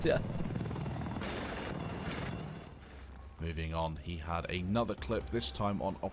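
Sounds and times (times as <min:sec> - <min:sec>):
speech: 0:00.0 - 0:00.4, 0:03.4 - 0:06.1
video game helicopter rotor thumping: 0:00.0 - 0:02.8.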